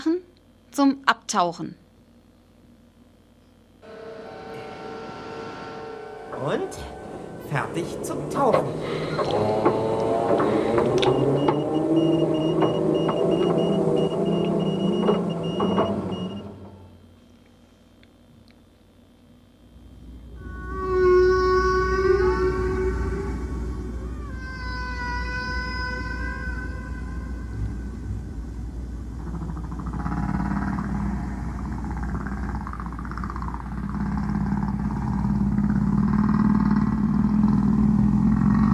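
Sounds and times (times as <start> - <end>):
speech: 0.8 - 1.8, 6.4 - 12.6
long wavering harmonic whale moans underwater: 4.0 - 16.4, 20.2 - 38.7
deep steady underwater rumble: 4.2 - 17.0, 19.7 - 38.7.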